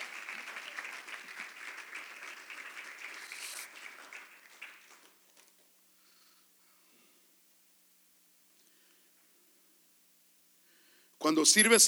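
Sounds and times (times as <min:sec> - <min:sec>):
congregation applause: 0:00.0 - 0:05.6
speech: 0:11.3 - 0:11.8.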